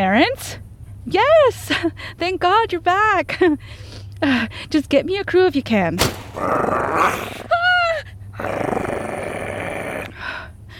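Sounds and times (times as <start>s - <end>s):
speech: 0.1s - 7.5s, 8.4s - 8.8s
coyote growling: 6.1s - 10.4s.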